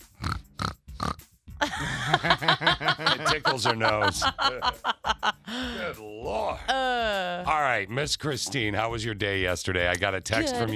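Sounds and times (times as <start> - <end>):
person imitating pig oinks and a raspy squeal: 0.2 - 1.2, 8.4 - 8.8
laughter: 1.6 - 6.0
speech: 2.2 - 10.7.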